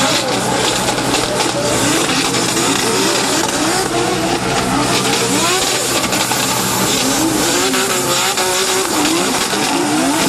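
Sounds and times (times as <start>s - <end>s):
drift car engines revving on a track: 0.0s - 10.2s
drift car tires squealing and skidding: 0.0s - 10.2s.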